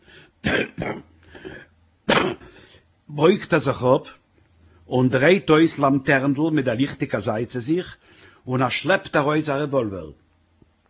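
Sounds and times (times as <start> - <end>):
short harsh coughs: 0.4 - 2.7
speech: 3.2 - 4.2, 4.9 - 10.2.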